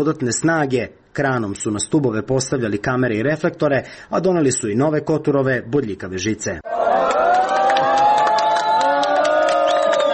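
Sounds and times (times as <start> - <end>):
speech: 0.0 - 6.7
group of refugees clapping at a border fence: 6.7 - 10.1.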